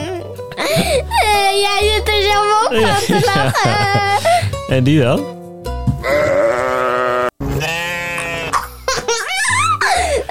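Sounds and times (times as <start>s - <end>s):
speech: 0.6s - 5.4s
laughter: 2.7s - 4.6s, 8.6s - 10.2s
sheep bleating from animal-sound toy: 6.1s - 8.6s.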